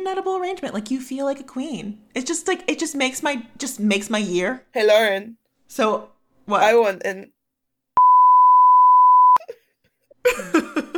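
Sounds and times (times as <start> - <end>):
speech: 0.0 - 7.4, 10.2 - 10.6
long steady electronic beep: 8.0 - 9.4.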